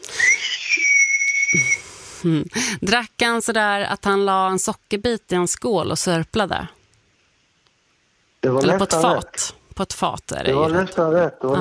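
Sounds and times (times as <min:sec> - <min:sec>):
steady piercing high whistle: 0:00.1 - 0:02.1
speech: 0:02.2 - 0:06.8, 0:08.4 - 0:11.5.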